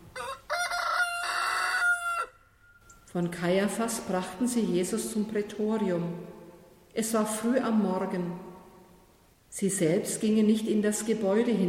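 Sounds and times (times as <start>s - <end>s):
rooster crowing: 0.1s - 2.8s
speech: 3.1s - 6.4s, 7.0s - 8.5s, 9.6s - 11.6s.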